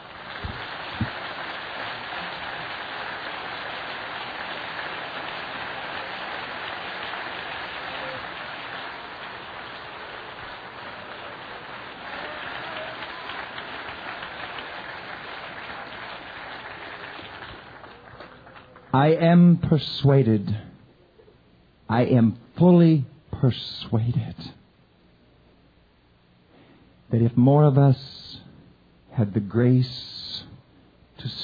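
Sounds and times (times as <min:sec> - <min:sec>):
church congregation applauding: 0:00.0 - 0:19.0
speech: 0:19.0 - 0:20.7, 0:21.9 - 0:24.6, 0:27.1 - 0:28.1, 0:29.2 - 0:30.1.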